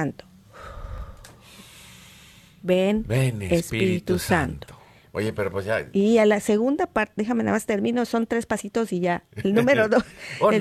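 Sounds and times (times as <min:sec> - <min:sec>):
speech: 0:00.0 - 0:00.3, 0:02.6 - 0:10.5
person inhaling sharply during a slow breathing exercise: 0:00.5 - 0:02.6.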